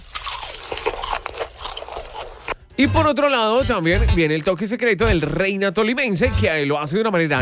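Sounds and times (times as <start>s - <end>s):
crunching crispy pork skin seasoned with salt, pepper and lime: 0.0s - 2.6s
speech: 2.8s - 7.4s.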